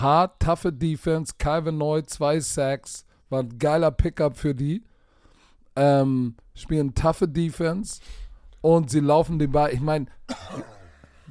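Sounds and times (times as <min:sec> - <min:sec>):
speech: 0:00.0 - 0:04.9, 0:05.8 - 0:10.7
person sneezing: 0:10.3 - 0:11.2.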